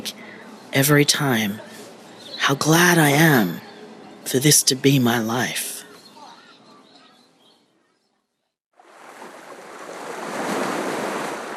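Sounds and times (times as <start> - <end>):
speech: 0.0 - 1.7, 2.5 - 5.6
ocean waves on a windy winter beach: 8.7 - 11.5
wind rushing steadily over the water: 8.8 - 11.5.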